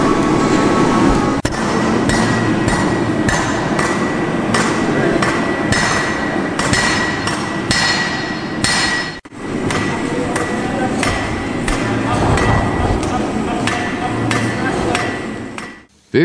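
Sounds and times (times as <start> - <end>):
constant workshop noise: 0.0 - 16.2
blacksmith hammering metal in a former railway locomotive workshop: 1.5 - 15.8.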